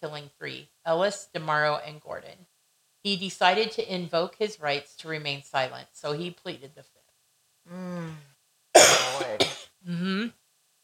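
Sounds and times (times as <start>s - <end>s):
speech: 0.0s - 2.4s, 3.0s - 7.0s, 9.8s - 10.4s
short voiced throaty groans: 7.7s - 8.4s
person coughing: 8.8s - 9.7s.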